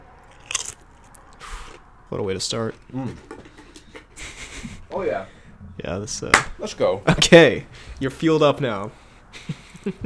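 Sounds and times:
person biting into a crisp chip: 0.2 - 1.8
speech: 2.1 - 3.5, 5.0 - 10.0
laughter: 9.3 - 10.0.

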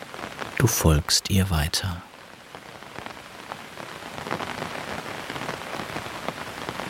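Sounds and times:
raindrops pattering and tapping on a nearby surface: 0.0 - 0.7, 2.1 - 6.8
steady rain falling close by: 0.0 - 6.8
speech: 0.6 - 2.1.

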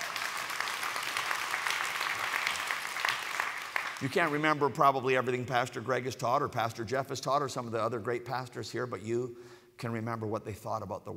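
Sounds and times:
crowd clapping: 0.0 - 4.7
speech: 4.0 - 11.1.

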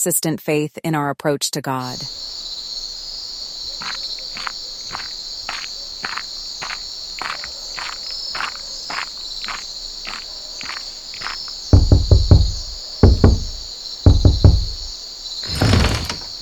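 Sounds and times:
speech: 0.0 - 2.5
crickets chirring at night: 1.9 - 16.3
firm knocks on a wooden door at night: 11.8 - 14.9, 15.5 - 16.3.

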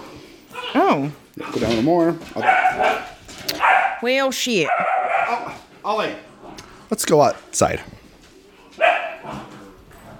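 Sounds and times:
speech: 0.9 - 3.1, 4.0 - 6.3, 6.9 - 8.0
dog barking: 1.4 - 1.8, 2.4 - 5.6, 8.8 - 9.5.

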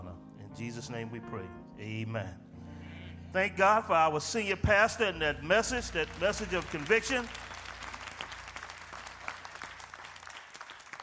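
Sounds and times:
speech: 0.6 - 2.5, 3.3 - 7.4
crowd of people clapping: 5.2 - 11.0.

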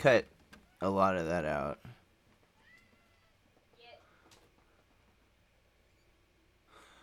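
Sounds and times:
speech: 0.0 - 1.9
low hiss: 0.0 - 7.0
cat screaming: 2.6 - 3.5.

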